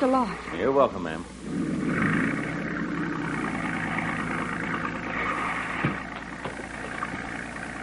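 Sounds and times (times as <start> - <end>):
speech: 0.0 - 1.7
boat engine idling: 1.4 - 7.8
faint clunks: 5.7 - 7.2.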